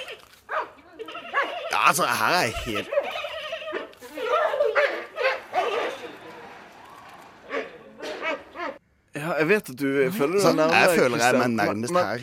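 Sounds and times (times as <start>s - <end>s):
dog barking: 0.0s - 1.7s, 2.8s - 6.3s, 7.4s - 8.8s
dog whining and yelping: 0.0s - 1.8s, 2.7s - 6.1s
speech: 1.8s - 3.0s, 9.3s - 12.2s.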